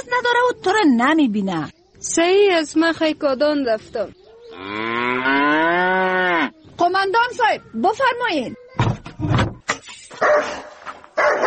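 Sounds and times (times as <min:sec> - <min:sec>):
speech: 0:00.1 - 0:05.5, 0:06.8 - 0:09.4
dog barking: 0:10.2 - 0:11.4.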